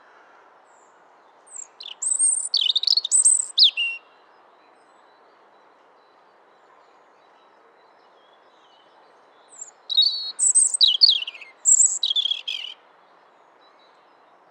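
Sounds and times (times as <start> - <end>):
European robin Erithacus rubecula singing: 1.5 - 4.4, 7.2 - 12.8.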